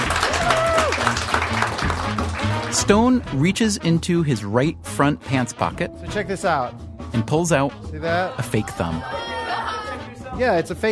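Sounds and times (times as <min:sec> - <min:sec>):
audience applause: 0:00.0 - 0:02.8
speech: 0:02.8 - 0:09.3, 0:10.4 - 0:10.9.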